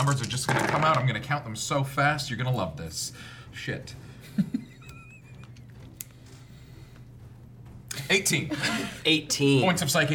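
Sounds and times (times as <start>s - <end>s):
several small dice clattering against a hard tabletop: 0.0s - 1.1s
speech: 0.0s - 4.7s, 8.1s - 10.1s.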